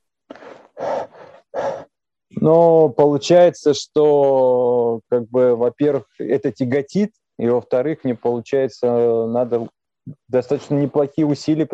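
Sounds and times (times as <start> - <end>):
heavy panting with mouth open and tongue out: 0.3 - 2.0
speech: 2.4 - 11.7.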